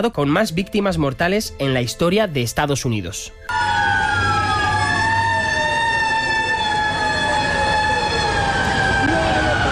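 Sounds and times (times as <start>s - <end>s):
speech: 0.0s - 3.9s
fire truck sirens wailing on city streets: 3.5s - 9.7s
dense rumble of city traffic: 3.6s - 9.7s.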